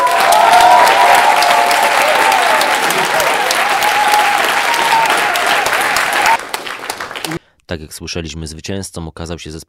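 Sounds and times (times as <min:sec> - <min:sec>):
large audience applause at an award announcement: 0:00.0 - 0:07.4
speech: 0:07.7 - 0:09.6.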